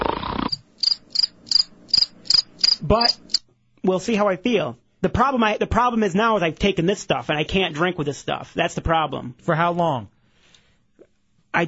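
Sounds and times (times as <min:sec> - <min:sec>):
burst of noise: 0:00.0 - 0:00.6
crickets chirping: 0:00.0 - 0:03.4
speech: 0:02.9 - 0:10.2.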